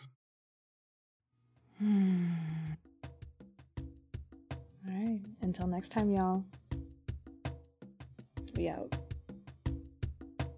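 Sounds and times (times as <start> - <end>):
speech: 1.8 - 2.5, 5.2 - 6.6, 8.6 - 9.0
deep breath in: 1.8 - 2.8
long voiced sigh sliding down in pitch: 1.8 - 2.8.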